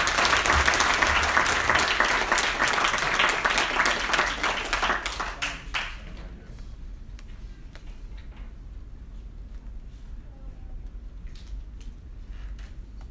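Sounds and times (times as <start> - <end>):
crowd applauding: 0.0 - 6.1.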